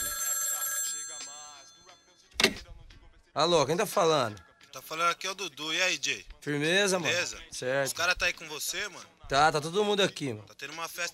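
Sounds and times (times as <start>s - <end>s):
telephone ringing with electronic ring tones: 0.0s - 2.5s
speech: 3.4s - 11.1s.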